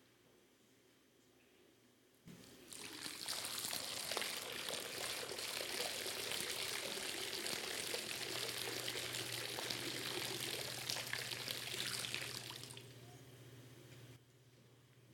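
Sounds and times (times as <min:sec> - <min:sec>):
water pouring into a baptismal font for a baptism: 0:02.7 - 0:12.9.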